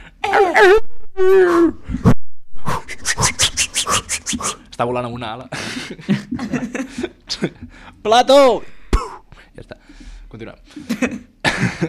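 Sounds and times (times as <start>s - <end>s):
person imitating a whimpering dog: 0.2s - 1.9s, 2.6s - 4.7s
speech: 0.4s - 1.8s, 4.8s - 8.8s, 9.6s - 11.2s.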